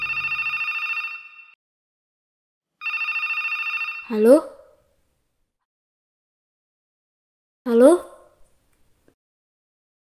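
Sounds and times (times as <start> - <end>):
telephone ringing with a rapid trilling bell: 0.0 - 1.6, 2.8 - 4.2
speech: 4.1 - 4.5, 7.7 - 8.1.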